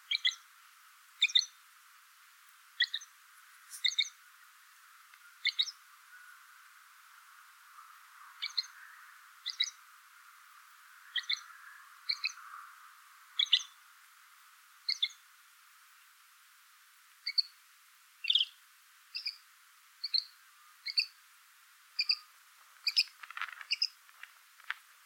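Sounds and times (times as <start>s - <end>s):
great grey shrike Lanius excubitor: 0.0s - 0.5s, 1.2s - 1.6s, 2.8s - 6.4s, 7.7s - 9.9s, 10.5s - 13.8s, 14.8s - 15.3s, 17.2s - 17.6s, 18.2s - 21.2s, 22.0s - 24.3s.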